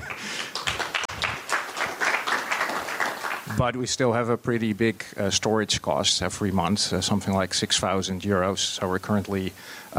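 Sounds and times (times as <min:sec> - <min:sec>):
audience applause: 0:00.0 - 0:03.7
speech: 0:03.6 - 0:09.9.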